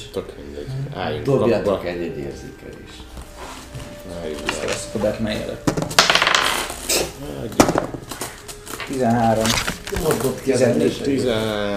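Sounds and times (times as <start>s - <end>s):
speech: 0.2s - 3.3s, 4.1s - 6.2s, 7.2s - 8.1s, 8.9s - 11.7s
dice clattering across a hard tabletop: 5.7s - 6.8s.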